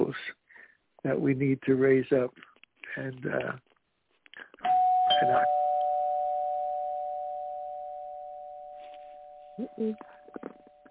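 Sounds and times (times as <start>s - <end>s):
speech: 1.0s - 3.7s, 5.2s - 5.6s, 9.6s - 10.6s
single bell tone signalling speaking time is up: 4.6s - 9.7s.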